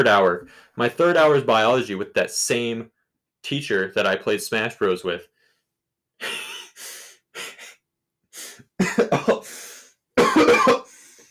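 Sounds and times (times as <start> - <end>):
speech: 0.0 - 5.3, 6.2 - 6.5, 8.8 - 9.4
person coughing harshly: 8.8 - 9.6, 10.2 - 11.2.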